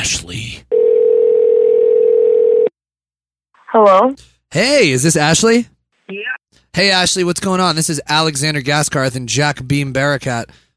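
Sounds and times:
telephone ringback tone while calling: 0.7 - 2.7
speech: 3.7 - 10.6.

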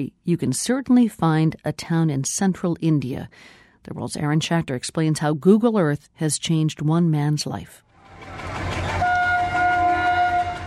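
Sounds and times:
speech: 0.0 - 8.7
train rumbling along the tracks: 7.9 - 10.6.

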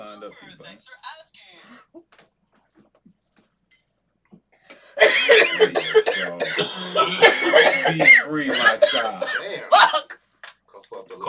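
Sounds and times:
speech: 0.2 - 2.2, 5.3 - 10.2
person coughing in a harsh fit: 5.0 - 10.1.

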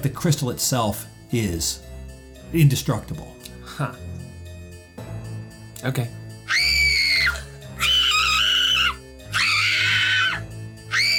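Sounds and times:
speech: 0.0 - 1.9, 2.5 - 4.2, 5.8 - 6.7
girl screaming loudly and shrilly: 6.5 - 11.1.

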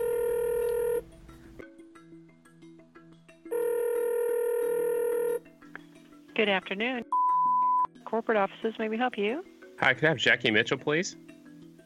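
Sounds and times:
telephone dial tone: 0.0 - 1.0, 3.5 - 5.4, 7.1 - 7.9
speech: 6.4 - 7.2, 8.1 - 11.2.

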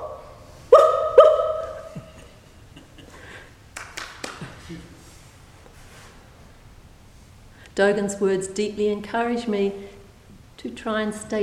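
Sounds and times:
dog barking: 0.0 - 1.9
speech: 4.7 - 4.9, 7.8 - 9.9, 10.6 - 11.4.

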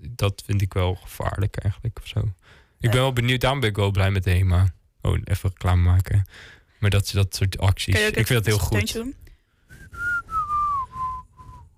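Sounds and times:
speech: 0.2 - 9.2
person whistling a short tune: 9.7 - 11.7.

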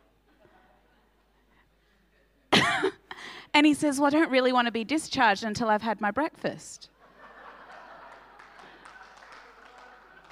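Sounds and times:
laughter: 0.3 - 1.6, 7.0 - 10.3
speech: 3.5 - 6.9
soft irregular hand claps: 8.1 - 10.3.

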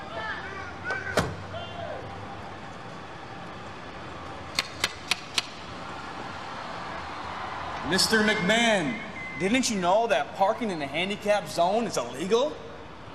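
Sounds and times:
low hum: 0.0 - 13.1
car door closing: 0.9 - 1.4
quick sharp clicks: 4.5 - 5.6
speech: 7.9 - 12.6.

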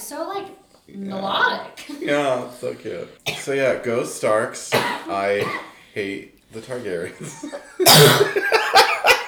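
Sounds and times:
speech: 0.1 - 8.8
person coughing: 4.7 - 5.8, 7.8 - 9.2
laughter: 6.0 - 9.2.

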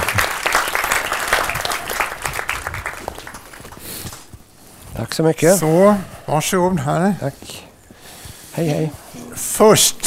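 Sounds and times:
audience applause: 0.0 - 4.3
speech: 5.0 - 7.6, 8.6 - 9.0, 9.6 - 10.0.

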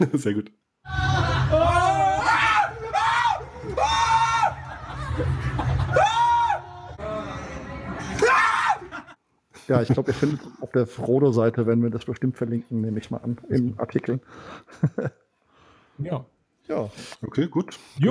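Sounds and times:
speech: 0.0 - 1.8, 9.7 - 15.2, 16.0 - 18.0
person screaming high-pitched: 0.9 - 4.7, 5.9 - 6.9, 8.2 - 8.9
laughter: 0.9 - 10.6.

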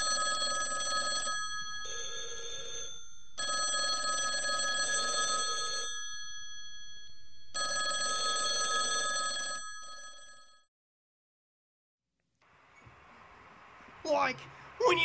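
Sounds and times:
old-fashioned telephone bell ringing: 0.0 - 10.7
speech: 14.1 - 15.0.

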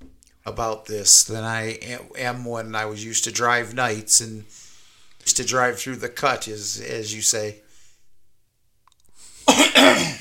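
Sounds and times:
speech: 0.4 - 4.6, 5.3 - 7.6
harsh coughs: 9.4 - 10.1.

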